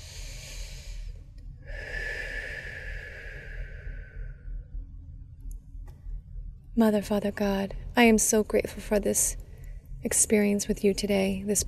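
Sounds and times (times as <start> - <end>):
deep breath taken during a guided prayer: 0.0 - 4.7
steady low hum: 0.0 - 11.6
speech: 6.8 - 9.4, 10.0 - 11.6.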